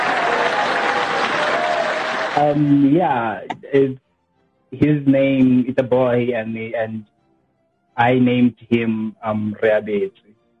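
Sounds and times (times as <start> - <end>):
person whooping: 0.0 - 2.4
crowd clapping: 0.0 - 2.6
speech: 2.4 - 4.0, 4.7 - 7.1, 8.0 - 10.2.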